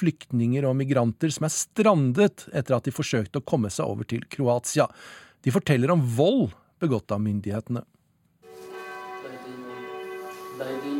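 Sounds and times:
speech: 0:00.0 - 0:07.9
church bells ringing outdoors: 0:08.5 - 0:10.9.

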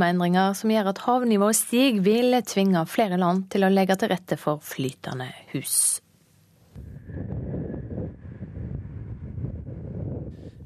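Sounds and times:
speech: 0:00.0 - 0:06.0
gusty wind buffeting the microphone at a quay: 0:06.8 - 0:10.6.

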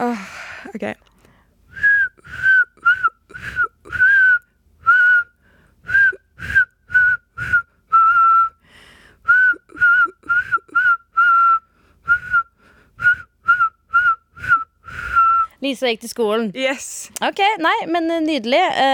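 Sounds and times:
speech: 0:00.7 - 0:01.1, 0:15.7 - 0:18.9
person whistling a melody: 0:01.7 - 0:08.6, 0:09.2 - 0:15.5.

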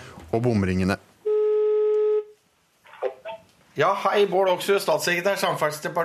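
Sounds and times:
speech: 0:00.3 - 0:01.1, 0:03.8 - 0:06.0
single loud steady telephone tone: 0:01.2 - 0:02.4.

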